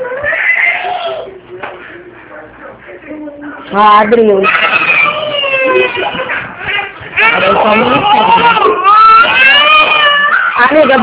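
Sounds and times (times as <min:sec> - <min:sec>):
baby crying: 0:00.0 - 0:01.3, 0:04.4 - 0:11.0
speech: 0:03.7 - 0:04.6, 0:07.4 - 0:08.8, 0:10.6 - 0:11.0.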